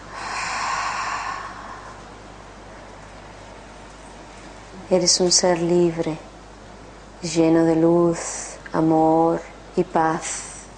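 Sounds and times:
long breath exhaled through the mouth during a guided breathing exercise: 0.0s - 2.1s
speech: 4.9s - 6.3s, 7.2s - 10.5s.

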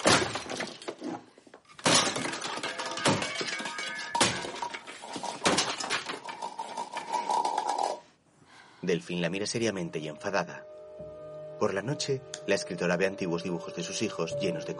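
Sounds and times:
blender base smashed against a kitchen counter: 0.0s - 1.0s, 1.7s - 4.8s
plastic rattling and crunching: 0.0s - 8.1s
speech: 8.9s - 10.7s, 11.6s - 14.7s.

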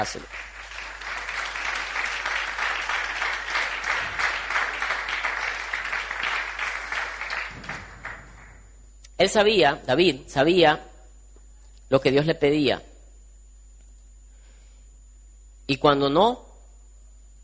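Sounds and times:
speech: 0.0s - 0.5s, 9.2s - 10.9s, 11.9s - 12.9s, 15.7s - 16.4s
crowd clapping in sustained applause: 0.0s - 8.8s.

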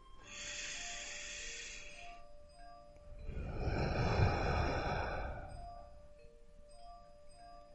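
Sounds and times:
slow deep breath in and out: 0.0s - 2.2s, 3.1s - 6.1s
faint sustained tone: 0.0s - 7.7s.

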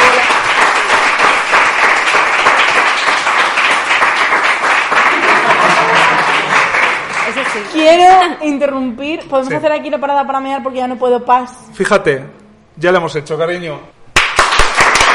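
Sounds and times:
loud sustained crowd applause: 0.0s - 8.1s, 14.2s - 15.1s
laughter: 5.0s - 6.8s
speech: 8.2s - 14.0s.

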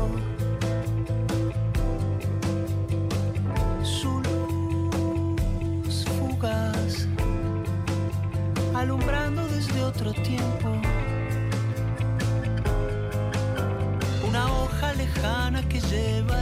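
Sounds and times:
person singing: 0.0s - 1.0s, 3.6s - 12.4s, 13.1s - 16.4s
song by a Uruguayan artist with percussion pulse, warm bass and sustained melodic tones: 0.0s - 16.4s.

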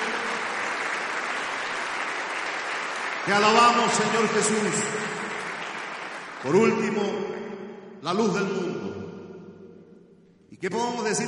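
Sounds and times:
large crowd applauding: 0.0s - 7.4s
speech: 3.2s - 5.2s, 6.4s - 7.4s, 8.0s - 8.7s, 10.6s - 11.2s.

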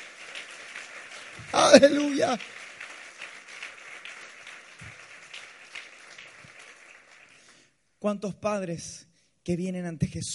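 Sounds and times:
crowd clapping steadily: 0.0s - 7.7s
speech: 1.5s - 2.6s, 8.0s - 10.3s.

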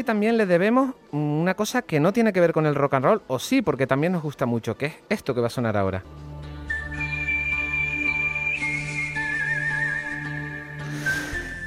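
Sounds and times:
speech: 0.0s - 6.3s
whistled western film theme melody: 6.6s - 11.6s.

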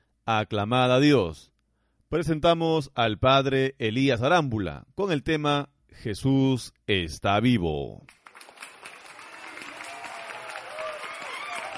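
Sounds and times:
speech: 0.3s - 1.5s, 2.1s - 8.2s
crowd applause: 8.1s - 11.7s.

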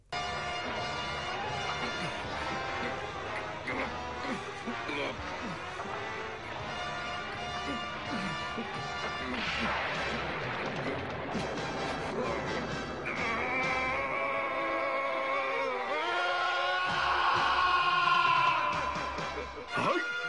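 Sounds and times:
dramatic effects: 0.0s - 19.9s
animated character's long strained raspy scream: 13.0s - 20.1s.

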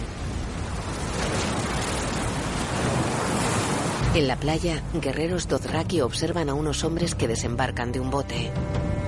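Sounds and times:
ocean waves washing against a shore: 0.0s - 5.0s
speech: 4.2s - 8.9s.

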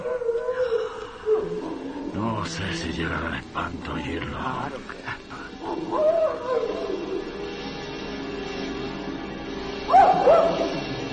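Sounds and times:
dogs howling: 0.0s - 2.2s, 5.6s - 7.5s, 9.9s - 10.9s
speech: 2.4s - 5.0s, 5.7s - 7.0s.

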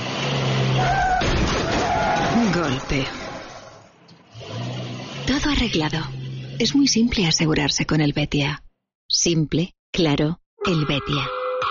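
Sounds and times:
car engine roaring: 0.0s - 6.7s
road noise: 0.0s - 7.4s
speech: 2.7s - 3.2s, 5.6s - 8.6s, 9.2s - 11.6s.

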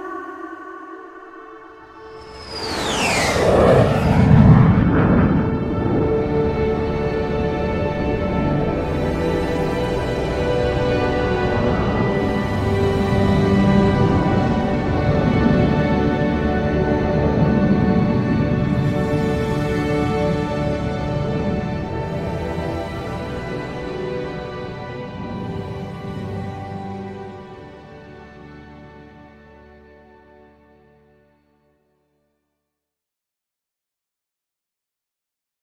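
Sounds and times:
descending whistle: 2.0s - 5.3s
rocket engines igniting and roaring: 2.2s - 27.3s.

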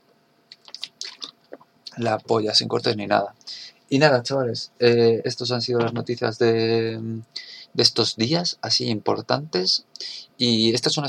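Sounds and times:
person taking a quick sip of water: 0.5s - 1.7s
speech: 2.0s - 11.0s.

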